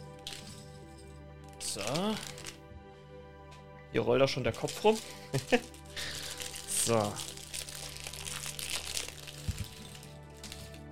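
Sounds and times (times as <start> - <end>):
crinkly packaging rustling as kit parts are unpacked: 0.0 - 0.6, 1.5 - 2.6, 4.4 - 10.9
speech: 1.7 - 2.4, 3.9 - 6.1, 6.8 - 7.3.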